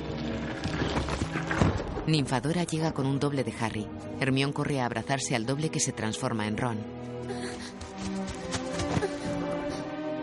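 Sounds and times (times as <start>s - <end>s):
hooves of a winged horse-like creature clip-clopping: 0.3s - 2.0s, 7.8s - 9.3s
speech: 2.1s - 7.6s.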